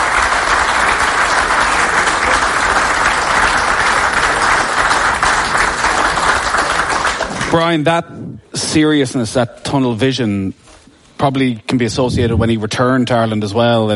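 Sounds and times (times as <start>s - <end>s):
large audience applause: 0.0s - 7.8s
speech: 7.6s - 13.9s.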